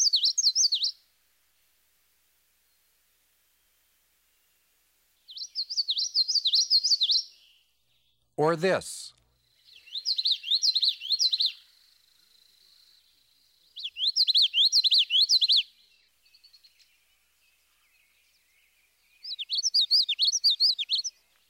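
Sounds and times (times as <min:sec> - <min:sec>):
common yellowthroat song variation: 0:00.0 - 0:01.0, 0:05.3 - 0:08.2, 0:09.4 - 0:21.4
speech: 0:08.4 - 0:09.0.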